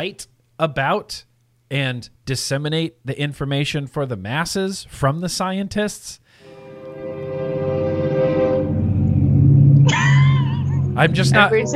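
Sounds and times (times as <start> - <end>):
speech: 0.0 - 6.2, 11.0 - 11.7
commuter train rumbling past a house: 6.4 - 11.7.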